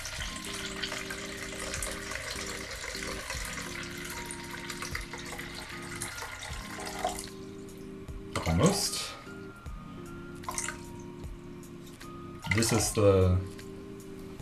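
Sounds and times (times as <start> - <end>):
water pouring from tap into measuring container for bread dough: 0.0 - 7.3
speech: 8.4 - 9.2, 12.6 - 13.6.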